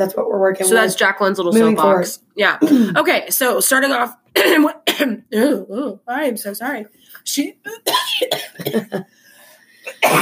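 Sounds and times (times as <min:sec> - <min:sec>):
speech: 0:00.0 - 0:09.2
loud fit of harsh forceful coughs: 0:04.4 - 0:05.5, 0:07.7 - 0:09.1, 0:09.9 - 0:10.2.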